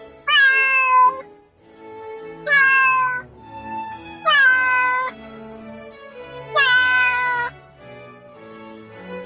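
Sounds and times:
cat meowing: 0.2 - 1.3, 2.4 - 3.3, 4.2 - 5.2, 6.5 - 7.5.

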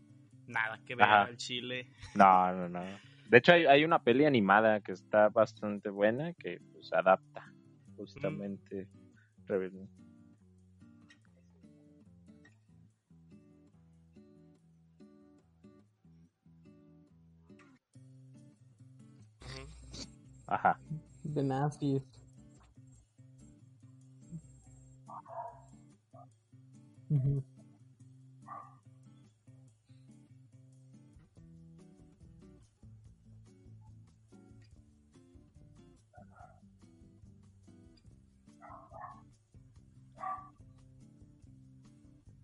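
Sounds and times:
speech: 0.5 - 10.0, 20.5 - 22.2, 27.1 - 27.5
female dog barking: 25.1 - 25.7, 28.5 - 28.8, 36.2 - 36.6, 38.6 - 39.2, 40.2 - 40.6.

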